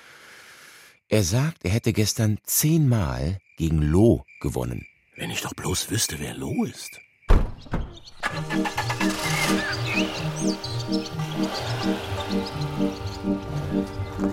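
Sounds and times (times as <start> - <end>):
speech: 1.1 - 7.0, 7.6 - 13.9
birds chirping: 3.4 - 14.3
small car engine puttering along a road: 7.9 - 12.8.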